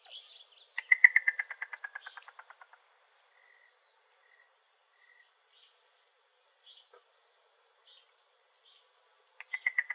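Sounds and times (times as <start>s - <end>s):
faint bird chirps: 0.0s - 7.1s, 7.8s - 9.9s
yellow-billed cuckoo giving a wooden series of clucking notes in Arizona: 0.8s - 2.8s, 9.4s - 9.9s.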